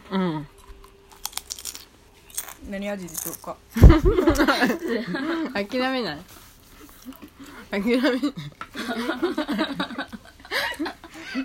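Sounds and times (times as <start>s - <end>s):
potato chips crunching while being eaten: 0.6s - 3.6s
speech: 2.7s - 6.4s, 7.7s - 9.9s
laughter: 3.8s - 5.6s, 7.8s - 11.4s.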